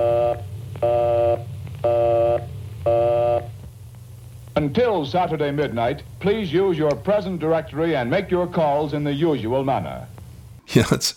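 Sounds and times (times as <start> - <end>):
telephone busy signal: 0.0 - 3.5
low steady hum: 0.0 - 11.1
speech: 4.6 - 10.1, 10.7 - 11.1.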